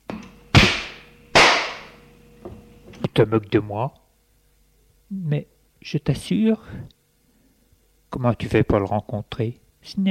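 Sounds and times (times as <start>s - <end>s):
slap to the face in a dramatic scene: 0.6s - 1.9s
speech: 3.1s - 4.0s, 5.1s - 7.0s, 8.1s - 10.1s.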